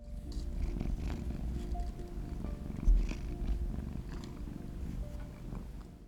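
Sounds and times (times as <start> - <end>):
cat purring: 0.0 - 6.0.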